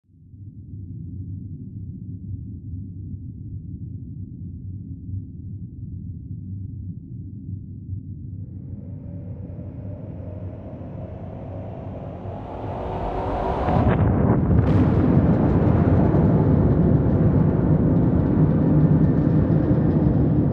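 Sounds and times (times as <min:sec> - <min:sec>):
underwater explosion: 0:08.4 - 0:20.4.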